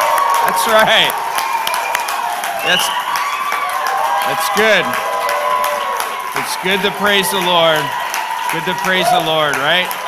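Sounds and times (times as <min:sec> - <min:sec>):
audience standing and cheering: 0:00.0 - 0:10.0
scattered claps: 0:00.0 - 0:10.0
speech: 0:00.6 - 0:01.3, 0:02.6 - 0:03.0, 0:04.2 - 0:05.1, 0:06.4 - 0:10.0.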